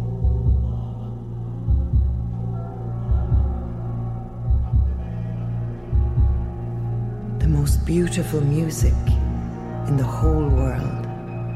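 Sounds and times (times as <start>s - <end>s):
slow steady heartbeat: 0.2s - 1.0s, 1.7s - 5.2s, 5.9s - 6.7s, 7.4s - 8.0s, 8.8s - 11.5s
speech: 7.9s - 9.2s, 9.9s - 11.0s.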